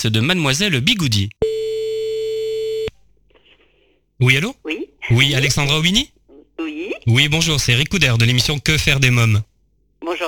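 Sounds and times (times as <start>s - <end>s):
speech: 0.0s - 1.4s, 4.2s - 10.2s
telephone ringback tone while placing a call: 1.4s - 2.9s.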